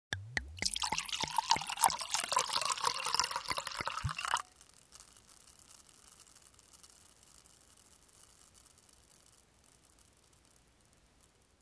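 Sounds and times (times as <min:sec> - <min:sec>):
wine pouring into a glass: 0:00.6 - 0:06.5.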